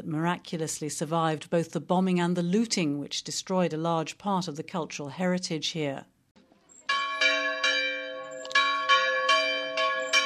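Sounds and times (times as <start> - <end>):
speech: 0.0 - 6.1
church bells ringing in a peal: 6.9 - 10.2.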